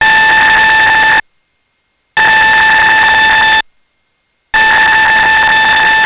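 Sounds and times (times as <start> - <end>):
EAS alternate emergency alert tone: 0.0 - 1.2, 2.2 - 3.6, 4.6 - 6.0.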